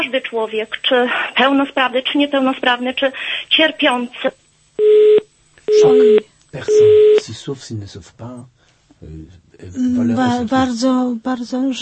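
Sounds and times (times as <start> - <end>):
speech: 0.1 - 4.4, 5.7 - 11.8
telephone busy signal beeps after a dropped call: 4.8 - 7.3
person talking over a phone line: 5.7 - 7.3.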